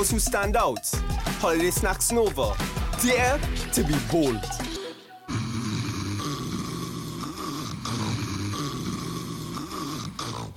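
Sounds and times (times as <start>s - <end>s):
speech: 0.0s - 4.7s
person snoring while asleep: 2.6s - 10.5s.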